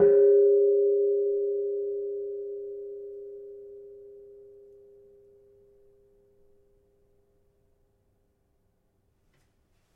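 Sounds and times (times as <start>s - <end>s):
gamelan kenong pelog 4: 0.0s - 5.7s.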